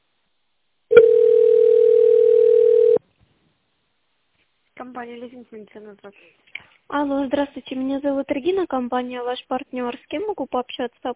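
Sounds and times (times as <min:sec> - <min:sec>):
telephone line tone on a company phone line: 0:00.9 - 0:03.0
speech: 0:05.0 - 0:11.1.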